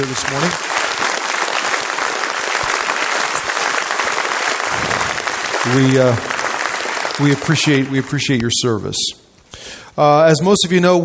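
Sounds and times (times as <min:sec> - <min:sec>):
speech: 0:00.0 - 0:00.8, 0:05.6 - 0:06.3, 0:07.2 - 0:11.0
large crowd applauding for veterans: 0:00.0 - 0:08.5.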